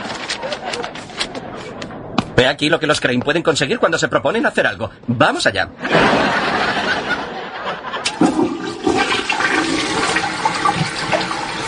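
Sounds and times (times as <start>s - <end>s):
speech: 2.4s - 6.3s
laughter: 5.8s - 8.6s
chain-pull toilet flushing: 7.6s - 11.6s.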